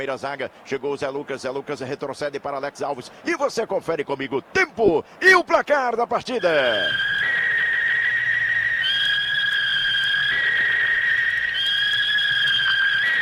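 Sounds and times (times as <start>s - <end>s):
speech: 0.0s - 7.1s
referee's shrill two-tone whistle: 6.3s - 13.2s.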